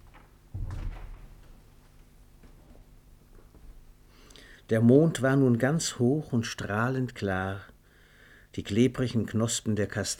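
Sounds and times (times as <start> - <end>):
door closing softly as two people leave a room: 0.0 - 2.8
speech: 4.7 - 7.7, 8.6 - 10.1.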